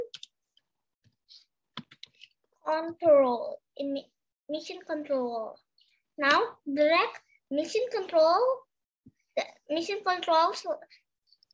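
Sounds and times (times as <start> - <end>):
soft clicky computer keyboard typing: 0.0 - 0.4, 1.8 - 2.2
speech: 2.7 - 5.6, 6.2 - 8.6, 9.4 - 11.0.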